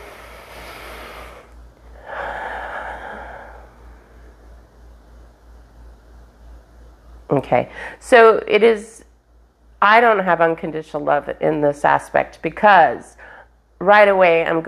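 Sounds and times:
breathy exhale: 0:00.0 - 0:04.0
person inhaling deeply: 0:00.0 - 0:04.0
low steady hum: 0:00.0 - 0:14.6
speech: 0:07.3 - 0:09.0, 0:09.8 - 0:14.6.

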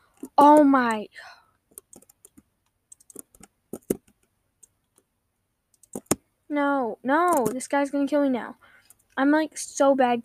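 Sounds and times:
speech: 0:00.2 - 0:01.4, 0:06.5 - 0:10.2
typing on a computer keyboard during an online game: 0:01.7 - 0:05.1, 0:05.7 - 0:06.2, 0:07.2 - 0:07.6.

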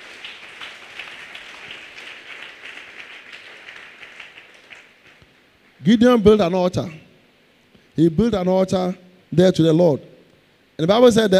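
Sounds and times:
audience clapping hands: 0:00.0 - 0:05.3
speech: 0:05.8 - 0:07.0, 0:08.0 - 0:10.1, 0:10.8 - 0:11.3.

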